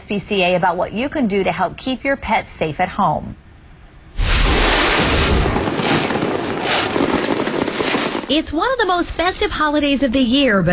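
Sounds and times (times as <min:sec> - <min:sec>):
speech: 0:00.1 - 0:03.4, 0:08.3 - 0:10.7
fireworks booming: 0:04.2 - 0:10.3.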